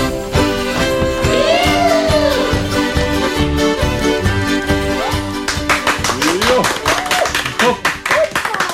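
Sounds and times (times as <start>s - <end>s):
sung musical performance: 0.2s - 7.8s
audience applause: 1.2s - 2.7s, 4.9s - 8.7s.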